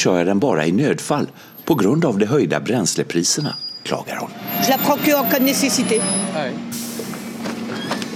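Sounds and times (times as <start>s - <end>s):
speech: 0.0s - 6.8s
large buses rumbling and whining as they pull in and away: 3.8s - 8.1s
air brakes of buses hissing as they release: 4.1s - 8.1s.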